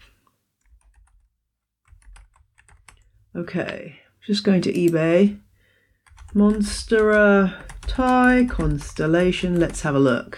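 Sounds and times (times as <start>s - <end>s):
computer keyboard typing: 0.6s - 3.1s, 6.0s - 10.1s
speech: 3.3s - 5.4s, 6.3s - 10.3s.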